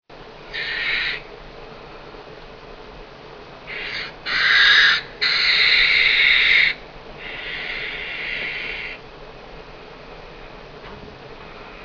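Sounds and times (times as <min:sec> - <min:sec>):
brushtail possum: 0:00.5 - 0:01.3, 0:03.6 - 0:09.0, 0:11.6 - 0:11.8.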